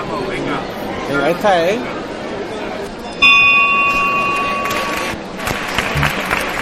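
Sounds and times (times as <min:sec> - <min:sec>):
speech: 0:00.0 - 0:02.0
crowd murmuring: 0:02.1 - 0:06.5
procession bell ringing: 0:03.2 - 0:05.2
scattered applause: 0:04.3 - 0:06.5.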